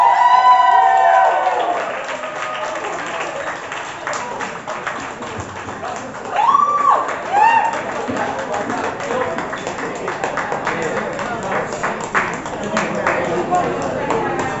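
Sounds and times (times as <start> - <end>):
audience whoops and cheers at a poetry slam: 0.0 - 2.9, 6.3 - 7.8
audience at a poetry slam applauding: 0.0 - 14.5.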